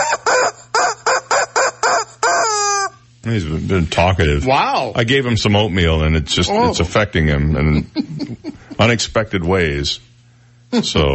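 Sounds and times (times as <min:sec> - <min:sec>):
rooster crowing: 0:00.0 - 0:03.0
speech: 0:03.2 - 0:10.1, 0:10.7 - 0:11.1.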